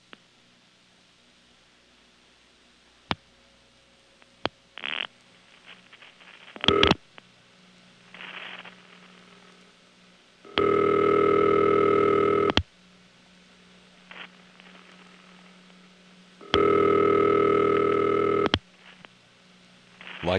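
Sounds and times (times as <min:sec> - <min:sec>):
fuzzy hissing telephone line noise: 0:00.0 - 0:20.3
telephone ringback tone over fuzzy trunk line: 0:10.5 - 0:12.6, 0:16.4 - 0:18.5.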